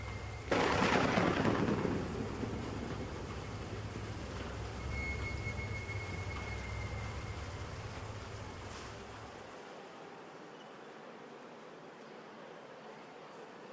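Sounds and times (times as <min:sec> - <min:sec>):
rain: 0:00.0 - 0:13.7
low rumble: 0:00.5 - 0:06.0.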